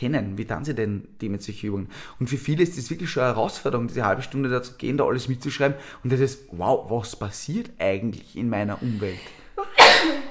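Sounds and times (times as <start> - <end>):
speech: 0.0 - 10.2
sharp sneeze caused by an allergy: 9.7 - 10.2.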